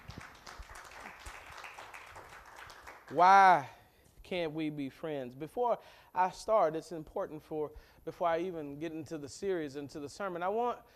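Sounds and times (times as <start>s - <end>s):
church audience applauding: 0.0s - 3.4s
speech: 3.1s - 10.9s.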